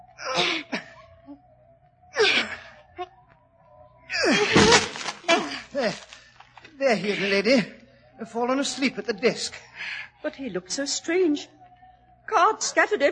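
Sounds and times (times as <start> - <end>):
wooden door being forced and broken down: 4.4 - 6.2
speech: 5.8 - 6.1, 6.9 - 11.6, 12.3 - 13.1.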